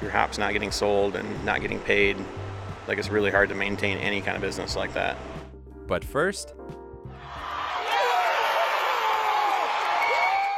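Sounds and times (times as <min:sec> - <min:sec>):
speech: 0:00.1 - 0:06.8
large crowd of baseball fans cheering celebrating championship win: 0:07.2 - 0:10.5.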